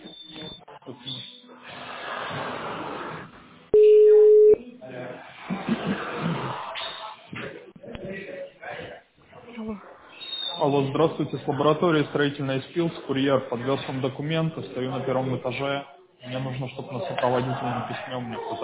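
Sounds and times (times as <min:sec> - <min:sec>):
telephone tone during call transfer: 0:03.8 - 0:04.6
speech: 0:10.7 - 0:18.6.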